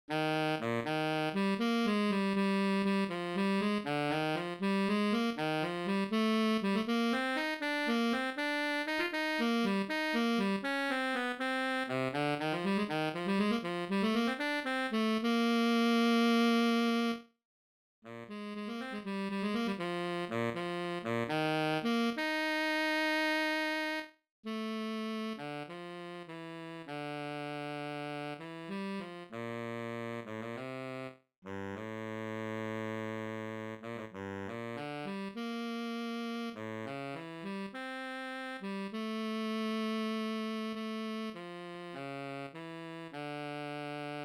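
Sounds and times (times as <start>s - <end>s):
baritone saxophone: 0.1s - 17.3s, 18.1s - 44.2s.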